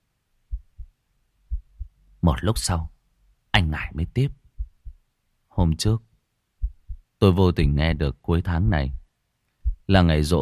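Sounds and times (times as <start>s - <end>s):
heartbeat sound effect with lub-dub thumps: 0.5s - 2.0s, 4.2s - 5.0s, 6.6s - 7.9s, 8.7s - 10.0s
speech: 2.2s - 3.0s, 3.7s - 4.4s, 5.6s - 6.1s, 7.2s - 9.0s, 9.9s - 10.4s.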